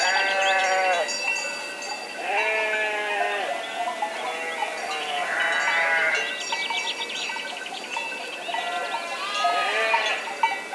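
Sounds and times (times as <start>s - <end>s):
sheep bleating in an enclosure: 0.0s - 1.2s, 2.2s - 3.6s, 4.2s - 6.3s, 8.5s - 10.7s
steady background hiss: 0.0s - 10.7s.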